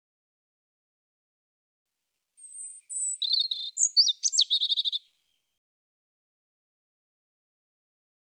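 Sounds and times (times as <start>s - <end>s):
European robin singing: 2.4s - 5.5s.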